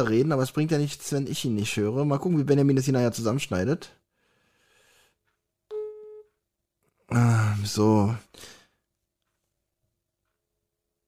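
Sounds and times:
speech: 0.0 - 4.0, 7.1 - 8.6
steady electronic telephone tone on an unanswered call: 5.7 - 6.4.

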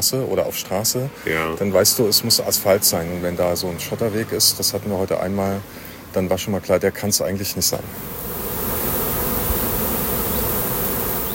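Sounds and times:
speech: 0.0 - 8.4
many bees buzzing around beehives: 7.7 - 11.3.

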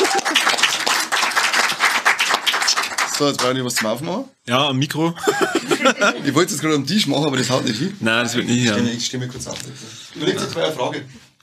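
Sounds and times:
laughter: 0.0 - 0.6, 5.2 - 6.6
audience applause at a live show: 0.0 - 3.6
speech: 3.2 - 11.2.

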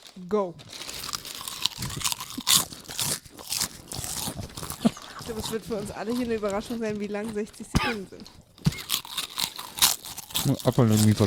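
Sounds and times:
potato chips being chewed in a chip-eating challenge: 0.0 - 11.2
speech: 0.2 - 0.8, 5.3 - 8.4, 10.4 - 11.2.

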